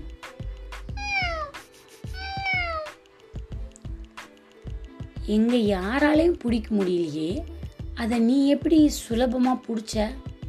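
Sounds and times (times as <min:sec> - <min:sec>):
cat meowing: 0:00.9 - 0:03.0
speech: 0:05.3 - 0:10.3.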